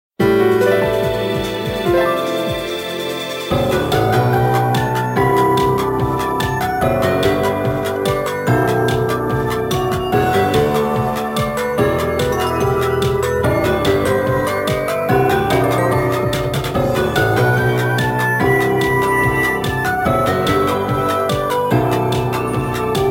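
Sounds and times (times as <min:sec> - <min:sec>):
background music: 0:00.2 - 0:23.1.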